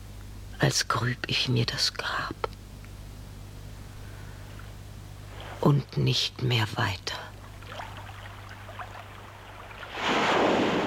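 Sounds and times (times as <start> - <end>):
speech: 0.6 - 2.5, 5.6 - 7.3
steady watery churning: 7.4 - 10.8
wave breaking against rocks: 9.7 - 10.8.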